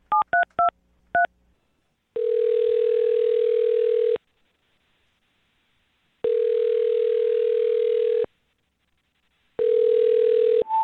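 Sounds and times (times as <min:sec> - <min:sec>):
loud steady telephone tone: 0:02.2 - 0:04.2, 0:06.2 - 0:08.3, 0:09.6 - 0:10.8.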